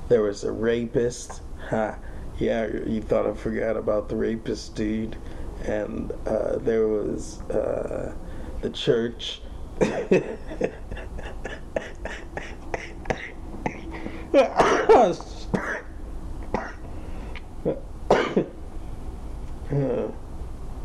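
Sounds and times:
speech: 0.1s - 11.1s, 14.3s - 15.3s
quick breathy laughter: 9.8s - 15.6s, 19.7s - 20.1s
harsh coughing: 9.8s - 15.9s, 16.5s - 16.9s, 17.7s - 18.6s
throat clearing: 9.8s - 15.9s, 16.5s - 16.8s, 17.7s - 18.6s.

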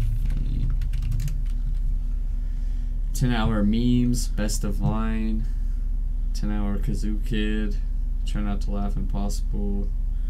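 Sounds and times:
fast typing of a search on a computer keyboard: 0.0s - 1.8s
steady low hum: 0.0s - 10.2s
speech: 3.2s - 5.6s, 6.4s - 10.0s.

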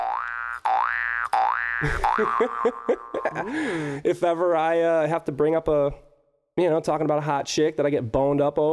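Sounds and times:
cartoonish boing sound effect: 0.0s - 3.3s
speech: 1.8s - 8.7s.

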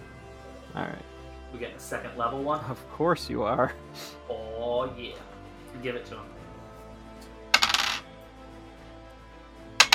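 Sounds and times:
speech: 0.8s - 6.4s
dice rolling across a hard surface with an echo: 7.6s - 8.0s, 9.8s - 9.9s.

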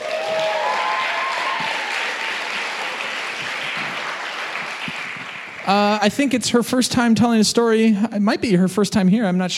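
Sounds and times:
whoops and cheers: 0.0s - 3.9s
audience applause for a person who spoke on stage: 0.0s - 6.4s
speech: 5.7s - 9.5s.

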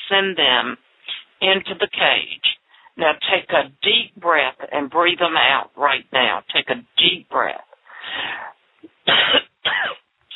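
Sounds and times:
speech: 0.1s - 10.3s
deep forceful hoarse cough: 9.1s - 10.0s.

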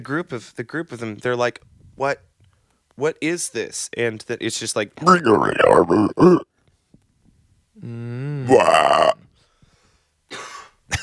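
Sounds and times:
speech: 0.0s - 2.3s, 3.0s - 6.5s, 7.8s - 9.2s
voice imitating guttural coughing: 5.0s - 6.4s.

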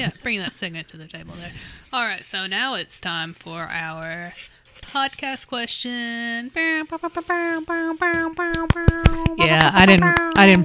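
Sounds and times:
speech: 0.0s - 10.6s
voice imitating an air horn: 6.6s - 10.6s
hand slaps or claps: 8.0s - 10.6s.

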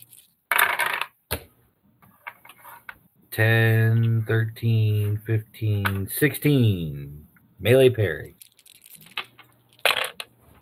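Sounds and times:
dice clattering across a hard table: 0.0s - 1.2s, 8.4s - 10.3s
speech: 3.4s - 8.4s.

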